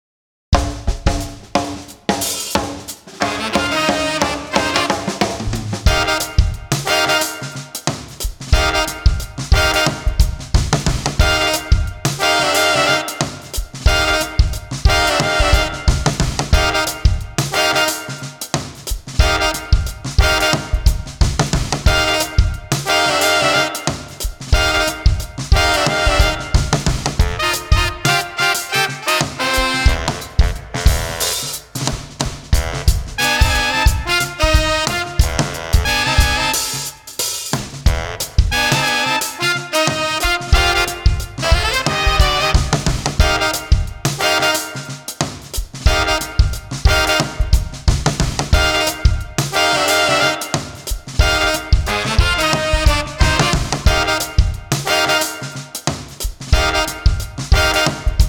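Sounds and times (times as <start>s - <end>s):
funky street brass combo: 0.6s - 58.2s.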